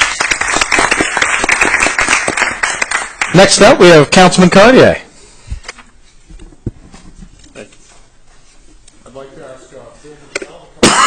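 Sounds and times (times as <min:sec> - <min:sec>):
audience round of applause: 0:00.0 - 0:03.8
speech: 0:03.4 - 0:05.0.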